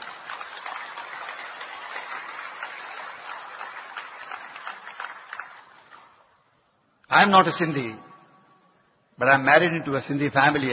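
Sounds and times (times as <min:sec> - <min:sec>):
crowd applauding: 0:00.0 - 0:06.3
speech: 0:07.1 - 0:08.1, 0:09.2 - 0:10.7.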